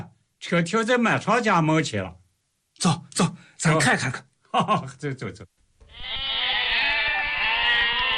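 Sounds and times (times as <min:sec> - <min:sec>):
speech: 0:00.4 - 0:02.2, 0:02.8 - 0:06.1
goats bleating: 0:05.9 - 0:08.1.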